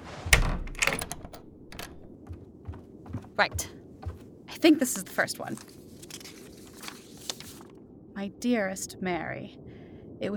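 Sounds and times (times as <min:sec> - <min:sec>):
front door banging open: 0:00.0 - 0:02.1
door rattling clicks as it settles: 0:00.3 - 0:02.2
speech: 0:03.4 - 0:03.8, 0:04.6 - 0:05.8, 0:08.2 - 0:09.6, 0:10.2 - 0:10.3.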